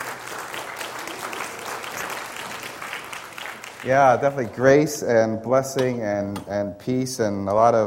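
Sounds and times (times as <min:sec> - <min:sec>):
congregation applauding: 0:00.0 - 0:04.9
speech: 0:03.8 - 0:07.8.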